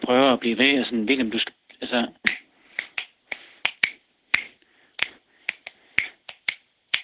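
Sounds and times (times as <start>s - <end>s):
speech: 0.1s - 2.4s
finger snapping a polymetric rhythm: 2.2s - 7.0s.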